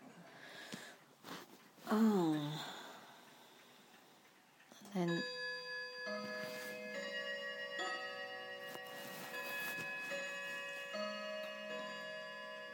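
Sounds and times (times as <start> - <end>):
clock ticking: 0.4 - 12.7
speech: 1.9 - 2.7, 5.0 - 5.4
clock's sustained ringing chime tones humming: 4.8 - 12.7.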